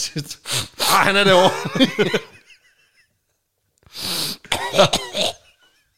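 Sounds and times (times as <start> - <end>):
speech: 0.0 - 2.4, 4.0 - 5.4
laughter: 1.2 - 3.1
person coughing: 4.5 - 5.6.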